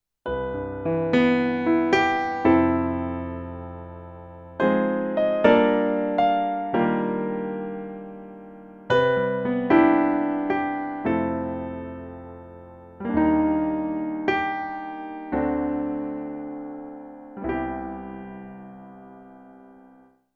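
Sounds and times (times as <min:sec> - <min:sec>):
digital stage grand piano: 0:00.2 - 0:20.3.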